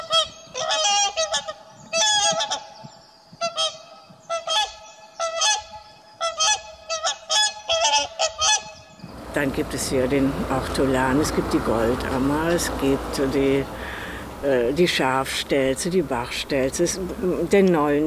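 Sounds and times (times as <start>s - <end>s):
flock of wild geese honking in the Elbe valley floodplain in Germany: 0.0s - 2.8s, 3.4s - 15.0s
speech: 9.4s - 13.8s, 14.4s - 18.0s.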